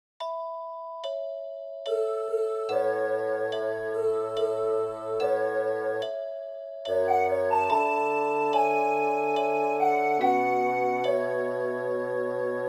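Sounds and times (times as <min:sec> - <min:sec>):
harmony trio alto and bass parts: 0:01.9 - 0:06.1, 0:06.9 - 0:12.6.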